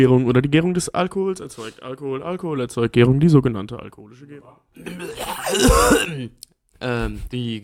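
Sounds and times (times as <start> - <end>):
speech: 0.0 - 7.6
rough phlegmy throat clearing with cough-like burst: 4.8 - 6.4.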